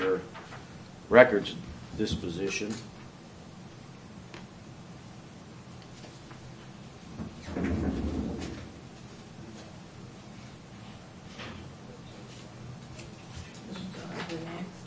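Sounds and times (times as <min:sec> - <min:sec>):
speech: 0:01.1 - 0:02.9
door thudding shut: 0:07.2 - 0:08.7
faint murmur: 0:09.4 - 0:14.8.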